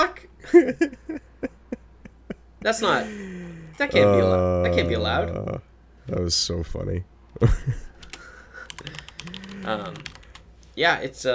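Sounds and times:
speech: 0.0s - 1.0s, 2.6s - 7.9s, 8.8s - 10.1s, 10.8s - 11.3s
typing on a computer keyboard: 8.0s - 10.5s.

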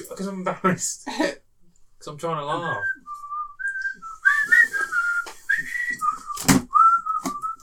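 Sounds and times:
speech: 0.1s - 1.4s, 2.0s - 3.0s
person whistling a wavering uneven little tune: 2.8s - 7.6s.

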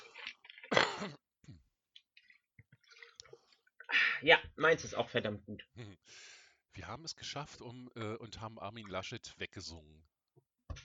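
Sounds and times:
person drinking water: 0.0s - 3.9s
speech: 4.2s - 10.2s.

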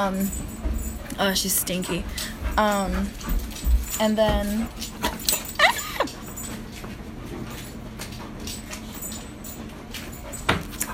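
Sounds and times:
speech: 0.0s - 0.6s, 1.2s - 5.2s
dog whimpering: 5.3s - 6.3s.

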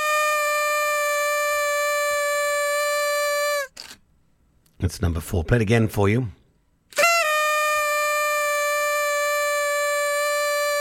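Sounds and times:
party horn blaring: 0.0s - 3.8s, 6.9s - 10.7s
speech: 4.8s - 6.4s.

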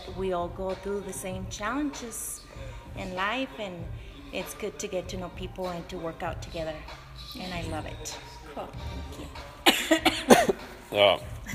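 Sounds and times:
speech: 0.2s - 11.4s
person coughing after a lot of running: 9.7s - 10.7s.

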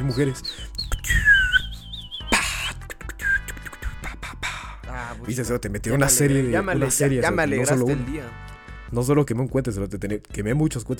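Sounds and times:
person whistling a wavering warbling tune: 0.0s - 3.6s
speech: 0.1s - 1.2s, 5.0s - 10.9s.

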